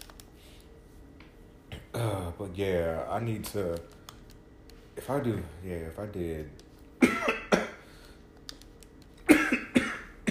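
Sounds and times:
speech: 2.0s - 4.0s, 5.0s - 6.6s
smoker's cough: 7.0s - 7.8s, 9.3s - 10.3s.

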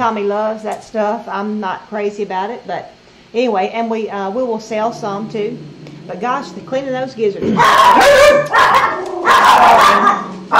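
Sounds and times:
speech: 0.0s - 10.5s
several dogs indoors barking and yipping at dogs outside: 7.6s - 10.5s.

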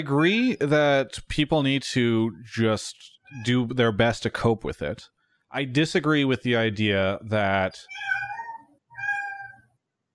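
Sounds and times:
speech: 0.0s - 8.4s
cat meowing loudly: 7.9s - 9.7s.

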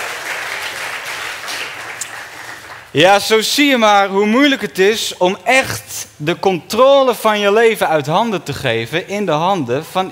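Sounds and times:
sizable audience applauding: 0.0s - 2.9s
speech: 2.9s - 10.1s.

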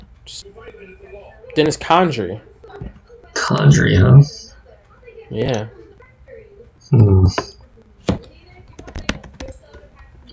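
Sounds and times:
speech: 0.3s - 4.5s, 5.3s - 5.8s, 6.9s - 7.6s
typing on a keyboard: 8.1s - 10.3s.

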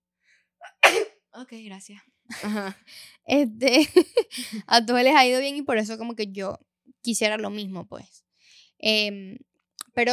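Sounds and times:
single loud sneeze: 0.6s - 1.1s
speech: 0.6s - 8.2s, 8.8s - 10.1s
laughter: 2.3s - 2.8s, 3.6s - 4.6s.

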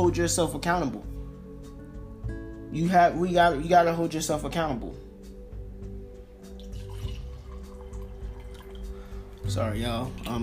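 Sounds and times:
speech: 0.0s - 1.2s, 2.7s - 5.0s, 9.4s - 10.4s
wine pouring into a cup: 6.4s - 10.4s.

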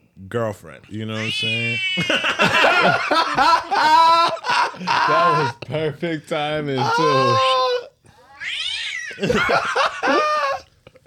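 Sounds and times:
speech: 0.3s - 7.6s, 9.2s - 10.3s
laughter: 2.0s - 5.9s, 9.2s - 11.0s
person imitating cat meows and yowls: 6.8s - 8.9s.

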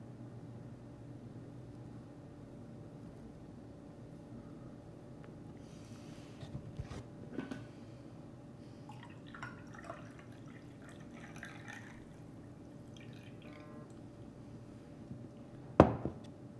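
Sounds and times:
faint constant hum: 0.0s - 16.5s
coffee pouring into a cup: 8.9s - 14.3s.

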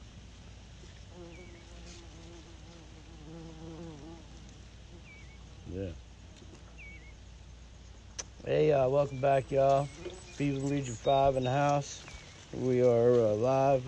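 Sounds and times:
bumblebee buzzing and hovering: 0.8s - 7.1s, 8.3s - 11.2s
faint bird chirps: 1.2s - 1.9s, 4.9s - 13.4s
speech: 5.8s - 6.0s, 8.4s - 13.8s.

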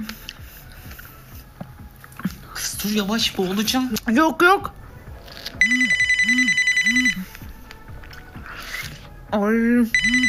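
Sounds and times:
speech: 2.8s - 4.8s, 9.3s - 10.2s
telephone ringing with bright electronic trill for an incoming call: 5.6s - 7.2s, 10.0s - 10.2s.

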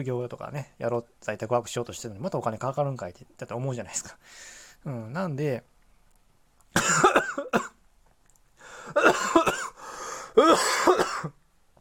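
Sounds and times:
speech: 0.0s - 5.7s, 6.8s - 7.7s, 10.4s - 11.4s
person coughing harshly: 6.8s - 7.8s, 8.9s - 11.4s.

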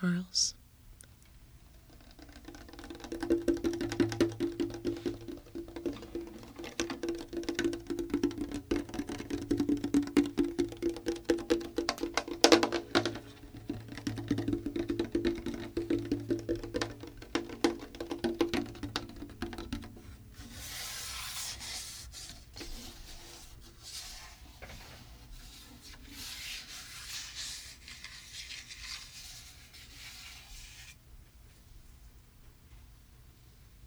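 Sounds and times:
speech: 0.0s - 0.6s
fingers tapping on hollow wooden body of a 1968 Harmony Sovereign acoustic guitar: 2.0s - 20.5s.

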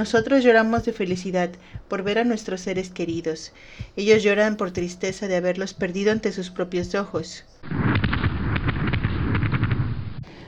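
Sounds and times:
speech: 0.0s - 7.8s
fireworks exploding: 7.6s - 10.3s.

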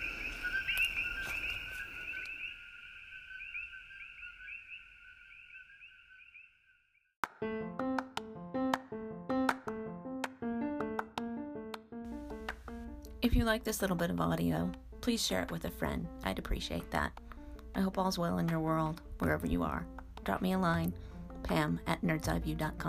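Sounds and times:
frog chirping: 0.0s - 7.1s
plucked musical melody: 7.3s - 22.8s
speech: 13.2s - 17.2s, 17.8s - 22.8s.

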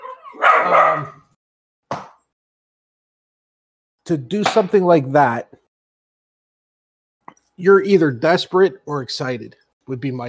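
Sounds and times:
dog barking: 0.0s - 1.3s
speech: 0.3s - 1.2s, 4.1s - 5.6s, 7.6s - 10.2s.

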